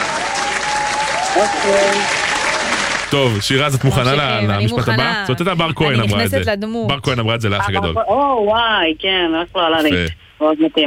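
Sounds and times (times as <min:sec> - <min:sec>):
applause: 0:00.0 - 0:04.4
speech: 0:01.4 - 0:02.2, 0:03.1 - 0:10.8.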